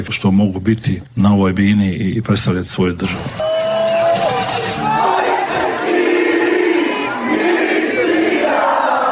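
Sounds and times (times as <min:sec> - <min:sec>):
speech: 0:00.0 - 0:03.6
crowd cheering from stadium stands at a match in Seattle: 0:03.3 - 0:09.1
crowd chanting in stadium stands: 0:04.1 - 0:09.1.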